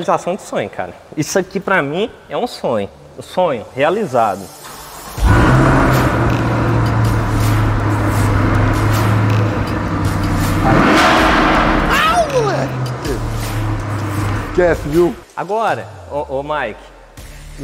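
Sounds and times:
speech: 0.0s - 4.6s, 14.6s - 16.9s
car engine starting and running: 4.8s - 15.2s
people's excited voices: 10.7s - 13.0s.

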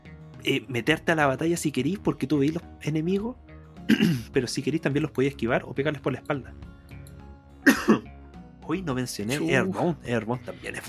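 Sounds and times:
speech: 0.4s - 6.8s, 7.7s - 8.1s, 8.7s - 10.8s
harsh coughs: 3.9s - 4.3s, 7.6s - 8.1s
laughter: 9.3s - 9.9s.

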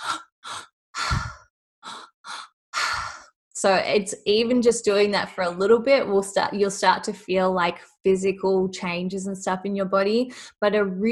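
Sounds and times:
three-part deep belly and chest breathing: 0.0s - 3.3s
speech: 3.6s - 11.1s.

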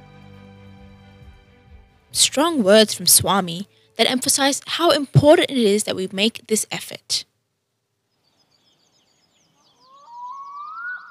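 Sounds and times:
speech: 2.1s - 7.3s
faint fluttering high chirps: 9.4s - 11.1s
melodic siren-like tone gliding upward in pitch: 9.8s - 11.1s.

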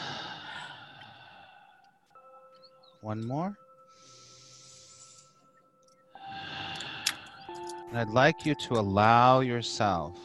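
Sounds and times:
deep breath in and out: 0.0s - 2.4s, 3.8s - 5.5s, 6.1s - 7.9s
soft steady tones: 0.3s - 10.2s
speech: 3.0s - 3.6s, 7.9s - 10.2s.

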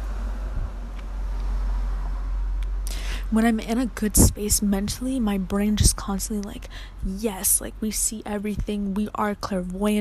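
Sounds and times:
car passing by: 0.0s - 2.9s
speech: 3.3s - 10.0s.

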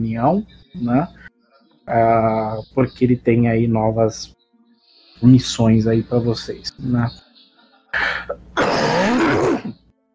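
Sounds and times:
speech: 0.0s - 1.3s, 1.9s - 4.4s, 5.2s - 7.2s, 7.9s - 9.8s
person with a flu coughing: 8.6s - 9.8s.

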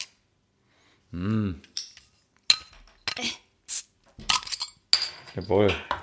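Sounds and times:
speech: 1.1s - 1.7s, 5.4s - 6.0s
beer bottle hiss: 3.7s - 3.9s.

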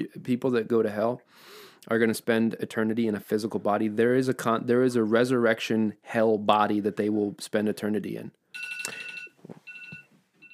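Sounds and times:
speech: 0.0s - 9.6s
phone alarm with bright repeating electronic tones: 8.6s - 10.5s.

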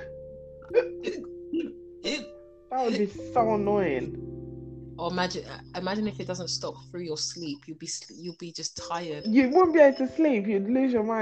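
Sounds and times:
speech: 0.7s - 1.8s, 2.8s - 4.2s, 5.0s - 11.2s
person imitating hiccups: 0.7s - 2.3s.

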